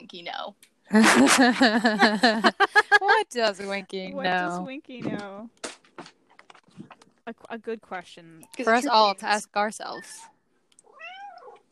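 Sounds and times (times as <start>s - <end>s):
speech: 0.1s - 5.6s, 7.3s - 10.3s
laughter: 0.9s - 3.3s
drawn-out cat meow: 9.9s - 11.6s.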